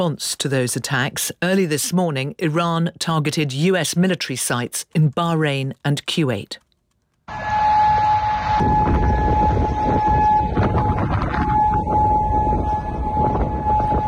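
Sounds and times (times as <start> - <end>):
speech: 0.0 - 6.6, 8.5 - 9.1
air raid sirens wailing in Kuwait: 7.3 - 14.0.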